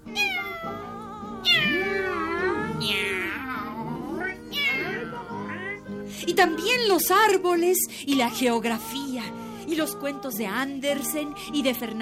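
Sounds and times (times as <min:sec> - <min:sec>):
cat meowing loudly: 0:00.0 - 0:05.9
speech: 0:06.3 - 0:12.0.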